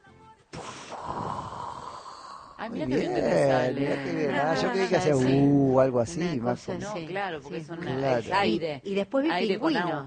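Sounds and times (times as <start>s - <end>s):
person imitating a whale's blow with a forceful breathy exhale: 0.6s - 2.6s
speech: 2.6s - 10.0s
laughter: 2.8s - 5.5s.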